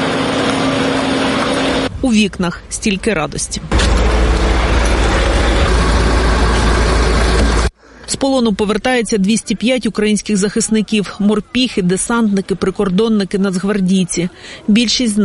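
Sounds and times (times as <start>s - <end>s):
bus engines idling: 0.0s - 1.9s, 3.6s - 7.7s
speech: 2.0s - 4.2s, 8.2s - 15.2s.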